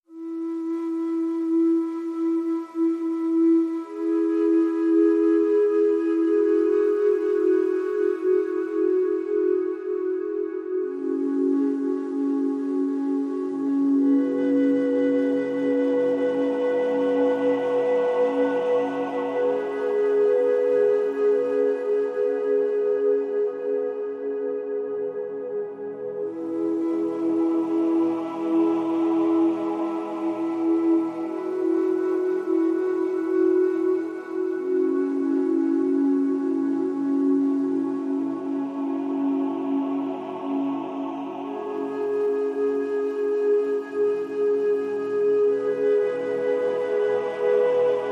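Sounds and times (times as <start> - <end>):
flute: 0.0 - 48.1
choir singing: 26.8 - 32.8, 38.3 - 43.4.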